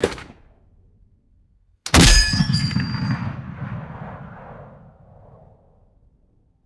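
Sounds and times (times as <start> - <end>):
deep metallic gun recoil decay: 1.9 - 4.8.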